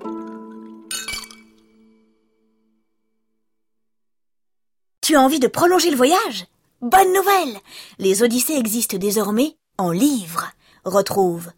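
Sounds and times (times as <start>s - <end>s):
glasses clinking in a toast: 0.1s - 2.1s
speech: 5.1s - 11.5s.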